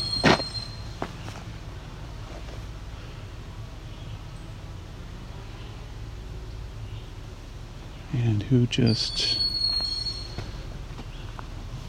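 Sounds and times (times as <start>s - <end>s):
steady low outdoor rumble: 0.0s - 11.8s
speech: 8.2s - 9.4s
young bird screaming for food: 9.1s - 10.4s.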